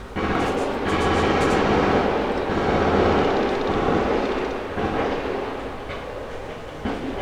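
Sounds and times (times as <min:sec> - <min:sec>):
distant gunshots: 0:00.2 - 0:07.1.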